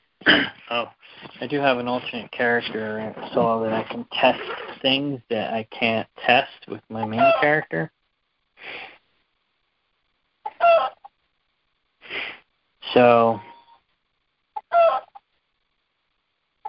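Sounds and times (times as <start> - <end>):
speech: 0.2 - 8.0, 8.6 - 8.9, 12.9 - 13.5
roosters crowing and clucking: 10.5 - 11.1, 14.6 - 15.2.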